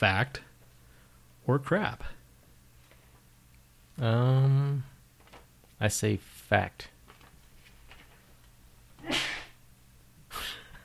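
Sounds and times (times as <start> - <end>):
speech: 0.0 - 0.5, 1.5 - 2.2, 4.0 - 4.9, 5.8 - 6.9
quiet hum: 0.0 - 10.8
sharp breathy sneezes: 9.0 - 9.6, 10.3 - 10.8.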